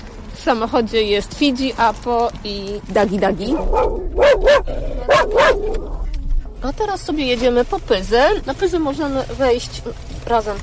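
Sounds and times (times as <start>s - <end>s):
speech: 0.4s - 6.0s, 6.6s - 10.6s
dog barking while getting into a car: 3.5s - 6.0s.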